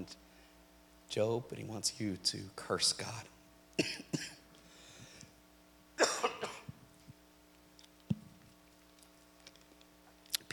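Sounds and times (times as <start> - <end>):
speech: 0.0 - 0.3, 1.1 - 4.4
low steady hum: 0.0 - 10.5
dry coughs: 3.8 - 4.5, 6.0 - 6.8.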